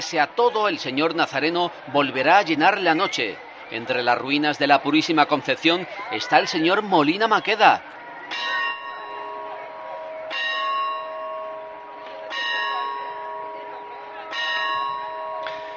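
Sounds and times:
speech: 0.0 - 8.5
faint murmur: 0.0 - 15.7
church bell tolling in Huelva on Good Friday: 8.3 - 15.7.

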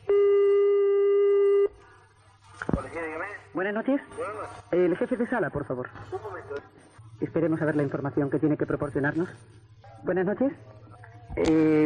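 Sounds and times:
unanswered telephone call tone: 0.0 - 1.8
speech: 3.6 - 10.8, 11.4 - 11.8.

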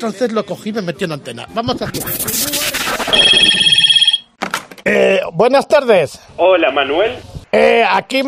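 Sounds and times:
speech: 0.0 - 4.0, 4.9 - 8.2
telephone bell ringing in a fast trilling burst: 3.1 - 4.3.

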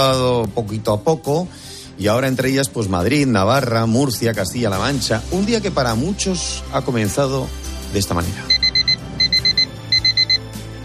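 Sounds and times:
speech: 0.0 - 8.6
electronic alarm clock beeping: 8.5 - 10.5.

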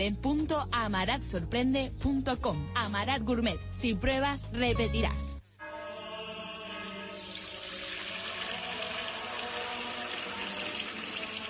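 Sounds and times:
speech: 0.0 - 5.4
water running from a tap: 7.2 - 11.4.

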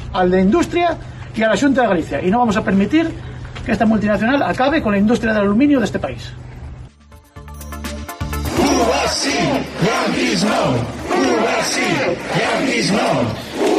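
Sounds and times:
speech: 0.1 - 6.4, 8.9 - 13.7
protest crowd in Xove Galicia Spain shouting rhythmic chants in unison: 8.4 - 13.7.

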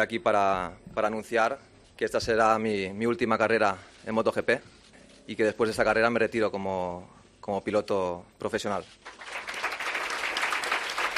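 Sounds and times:
speech: 0.0 - 9.5
applause from fellow riders at a press conference: 9.0 - 11.1.

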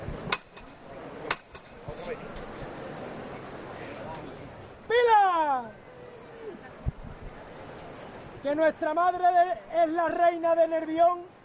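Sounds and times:
crowd murmuring outdoors: 0.0 - 10.0
hammer knocker striking a procession float: 0.3 - 1.8
speech: 8.5 - 11.4.

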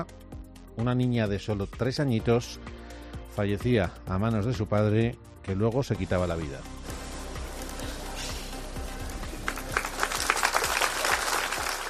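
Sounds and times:
speech: 0.0 - 0.2, 0.8 - 2.8, 3.4 - 6.8
crowd applauding: 9.1 - 11.8.

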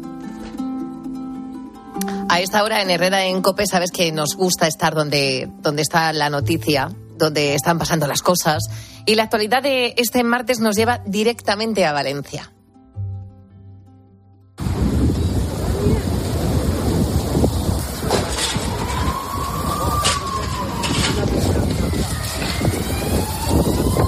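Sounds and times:
speech: 2.0 - 12.6
strong wind gusts buffeting a phone microphone: 14.6 - 24.0
rattling debris: 17.7 - 22.8.

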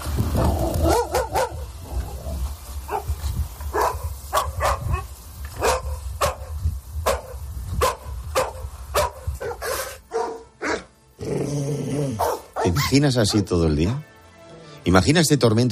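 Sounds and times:
dog growls and yips: 0.3 - 2.4, 10.6 - 12.9
dogs barking: 0.4 - 10.9, 12.1 - 13.6
speech: 12.7 - 14.1, 14.8 - 15.7.

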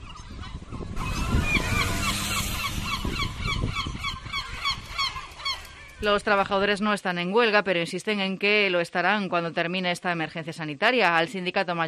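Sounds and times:
flock of seagulls squawking at street garbage containers in the morning: 0.0 - 6.4
speech: 6.0 - 11.8.

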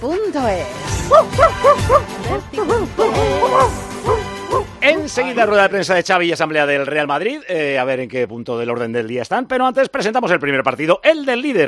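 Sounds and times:
speech: 0.0 - 2.9, 5.2 - 11.6
small dog barking happily: 1.1 - 4.6.

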